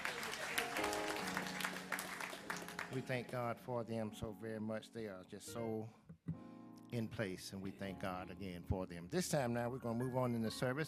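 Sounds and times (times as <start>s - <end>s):
roomful of people applauding: 0.0s - 3.5s
speech: 2.9s - 6.0s, 6.9s - 10.8s.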